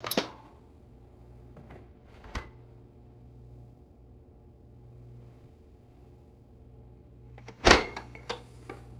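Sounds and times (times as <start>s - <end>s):
refrigerator door opening and closing: 7.5s - 8.1s.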